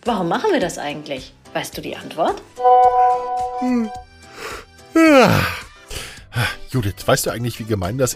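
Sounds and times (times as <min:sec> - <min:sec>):
speech: 0:00.0 - 0:05.6, 0:06.4 - 0:08.1
person yawning: 0:05.0 - 0:05.6.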